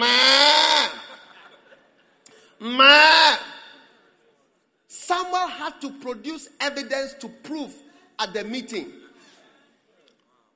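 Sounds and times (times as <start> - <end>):
single sheep bleating: 0.0 - 1.1
laughter: 0.0 - 3.2
faint noise: 0.0 - 10.5
speech: 5.8 - 9.0.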